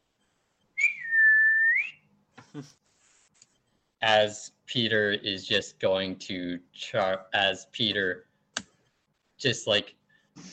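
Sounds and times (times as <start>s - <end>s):
person whistling a signal: 0.8s - 2.0s
speech: 2.6s - 2.8s, 4.0s - 8.3s, 9.4s - 10.5s.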